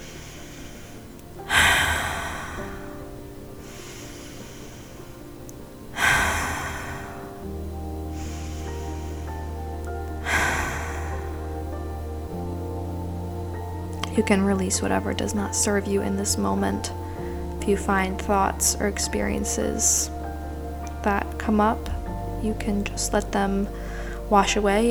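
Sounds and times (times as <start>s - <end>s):
deep cleansing breaths for a guided visualization meditation: 0.0s - 12.2s, 23.7s - 24.4s
quiet sustained musical drone: 0.0s - 24.8s
speech: 14.2s - 17.0s, 17.6s - 20.2s, 21.0s - 24.8s.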